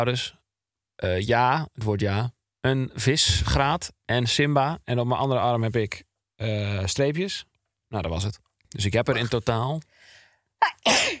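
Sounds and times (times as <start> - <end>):
speech: 0.0 - 0.4, 1.0 - 10.0
person sneezing: 10.6 - 11.1.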